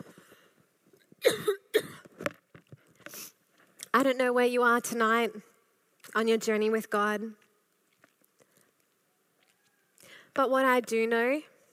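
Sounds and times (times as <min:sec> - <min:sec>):
person coughing into microphone: 0:01.2 - 0:02.1
speech: 0:04.0 - 0:05.5, 0:06.1 - 0:07.4, 0:10.4 - 0:11.5.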